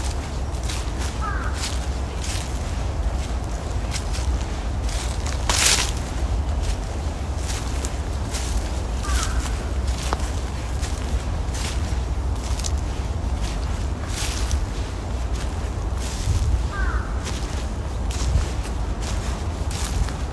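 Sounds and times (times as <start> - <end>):
dry fallen leaves crunching and rustling underfoot: 0.0 - 20.3
low steady outdoor rumble: 0.0 - 20.3
bird calling: 1.1 - 1.8, 9.0 - 9.8, 16.7 - 17.6.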